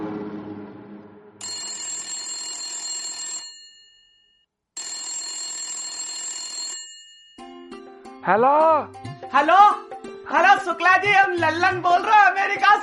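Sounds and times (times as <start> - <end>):
old-fashioned telephone bell ringing: 1.4 - 7.8
speech: 8.3 - 12.8.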